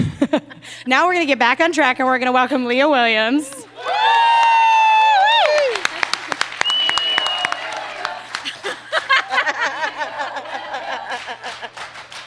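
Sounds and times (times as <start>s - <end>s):
speech: 0.8s - 3.6s
audience cheering with whoops and shouts: 3.5s - 12.2s
audience applause: 3.7s - 12.2s
audience laughter: 5.6s - 12.2s.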